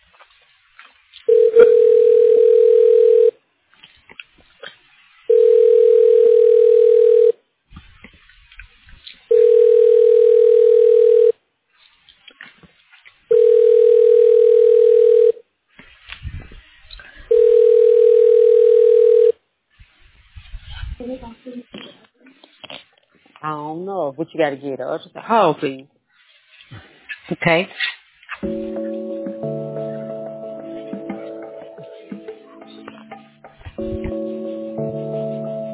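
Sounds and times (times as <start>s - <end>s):
faint noise: 0.0s - 35.7s
telephone line tone bursts while a call is transferred: 1.3s - 3.4s, 5.3s - 7.4s, 9.3s - 11.4s, 13.3s - 15.4s, 17.3s - 19.4s
speech: 24.2s - 25.9s, 27.4s - 27.8s.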